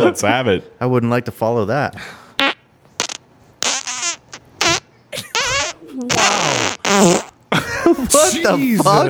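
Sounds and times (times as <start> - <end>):
speech: 0.1 - 2.2, 6.9 - 7.2, 8.3 - 9.0
recorded fart with rapid repeated bursts: 2.4 - 9.0.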